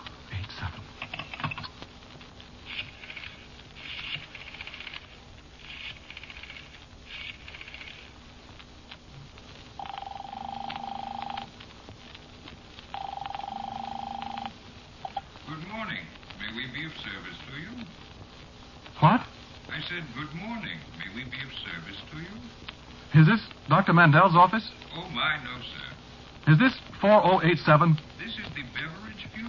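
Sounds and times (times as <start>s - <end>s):
long steady telephone ringing tones on the line: 9.8s - 11.5s, 12.9s - 15.2s
speech: 19.9s - 24.8s, 26.5s - 28.1s.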